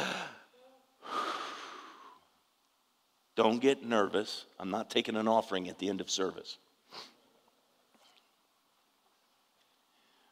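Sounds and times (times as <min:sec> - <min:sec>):
congregation taking a deep breath together during a church service: 0:00.0 - 0:02.3, 0:09.6 - 0:10.2
speech: 0:03.4 - 0:07.1.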